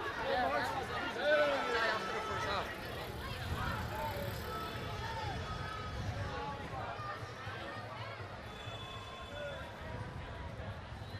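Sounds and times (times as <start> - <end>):
crowd cheering after a football win: 0.0 - 9.9
dense crowd celebrating a football win talking and shouting: 0.0 - 11.1
whistles at a street celebration: 8.5 - 9.5.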